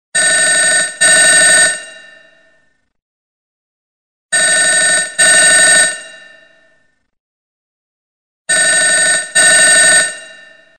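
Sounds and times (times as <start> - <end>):
classic bell ringtone: 0.2 - 2.6, 4.4 - 6.9, 8.5 - 10.7.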